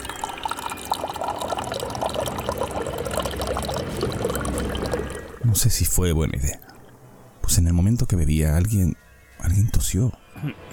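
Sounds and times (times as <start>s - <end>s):
water running from a dispenser into a plastic cup: 0.0s - 5.4s
speech: 5.6s - 6.7s, 7.5s - 10.7s.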